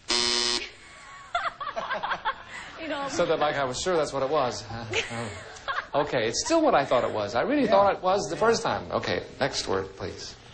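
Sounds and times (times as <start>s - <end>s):
loud harsh game show buzzer: 0.0s - 0.9s
people talking and chuckling: 0.7s - 8.9s
speech: 2.9s - 10.4s.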